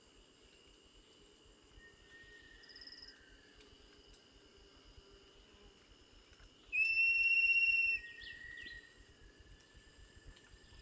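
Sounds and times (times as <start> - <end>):
tinamou loud pure level whistle call: 6.8 - 8.7.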